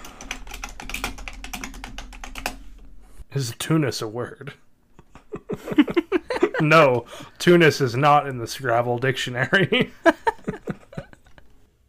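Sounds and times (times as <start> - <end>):
loud typing on a computer keyboard during a web search: 0.0 - 2.6
speech: 3.3 - 4.6, 6.6 - 10.2
laughter: 5.0 - 7.0, 9.4 - 11.4.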